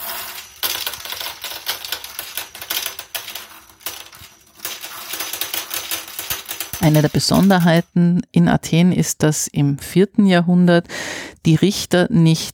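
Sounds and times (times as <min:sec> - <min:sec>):
small hard balls clattering into a wooden kleroterion allotment device: 0:00.0 - 0:08.0
speech: 0:06.8 - 0:12.5.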